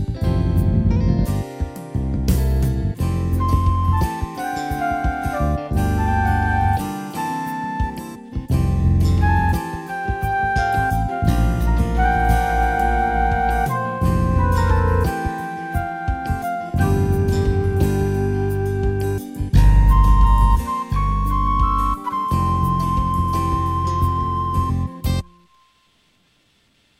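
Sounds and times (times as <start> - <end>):
note overhang: 0.1 - 1.5, 3.0 - 25.7.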